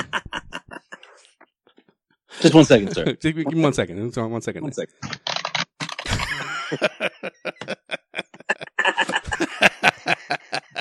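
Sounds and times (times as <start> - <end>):
laughter: 0.0 - 1.2, 6.1 - 10.7
speech: 2.4 - 5.2, 6.7 - 7.4
loud typing on a computer keyboard: 5.1 - 6.1.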